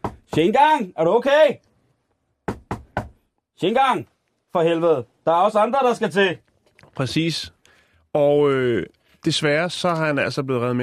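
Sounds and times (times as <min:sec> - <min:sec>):
firm knocking on a door: 0:00.0 - 0:00.5, 0:02.4 - 0:03.2
speech: 0:00.4 - 0:01.7, 0:03.6 - 0:06.4, 0:07.0 - 0:07.6, 0:08.2 - 0:10.8.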